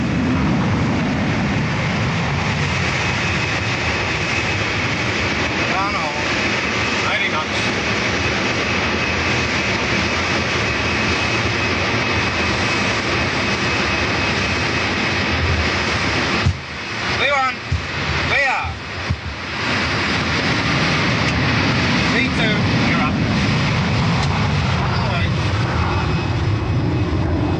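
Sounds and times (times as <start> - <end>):
airliner jet roar accelerating down the runway on takeoff: 0.0 - 27.5.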